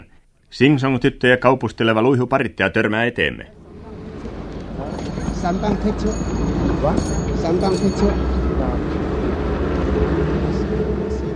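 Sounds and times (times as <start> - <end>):
speech: 0.5 - 3.6, 5.4 - 6.2, 6.8 - 9.1
dense rumble of street traffic: 3.5 - 11.3.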